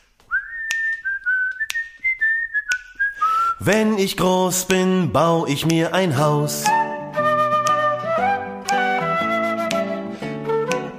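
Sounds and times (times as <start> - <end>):
person whistling a tune: 0.3 - 3.8, 6.4 - 10.9
speech: 3.6 - 6.8.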